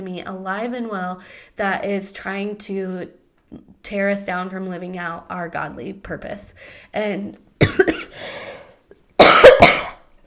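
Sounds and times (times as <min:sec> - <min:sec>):
speech: 0:00.0 - 0:07.9
harsh raspy coughing: 0:07.6 - 0:08.4, 0:09.2 - 0:10.1.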